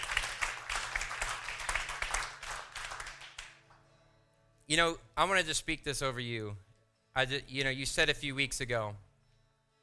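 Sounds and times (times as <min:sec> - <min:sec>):
small group of people clapping: 0:00.0 - 0:03.8
speech: 0:04.7 - 0:09.1.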